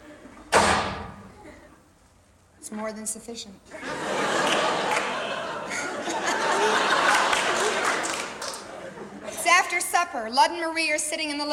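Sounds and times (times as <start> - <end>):
door slamming: 0.5 - 1.3
speech: 2.6 - 3.9, 9.8 - 11.5
laughter: 3.7 - 9.5.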